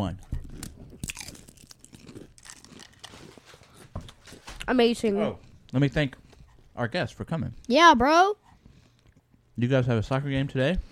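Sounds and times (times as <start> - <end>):
speech: 0.0 - 0.3, 4.7 - 6.2, 6.8 - 8.4, 9.6 - 10.9
crunching of Doritos chips being bitten and chewed: 0.5 - 3.6.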